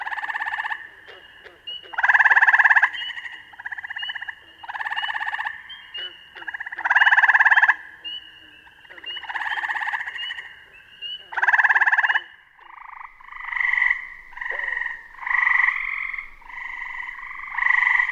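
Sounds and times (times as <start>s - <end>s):
Gray treefrog Hyla versicolor giving pulsed musical trills: 0.0s - 18.1s.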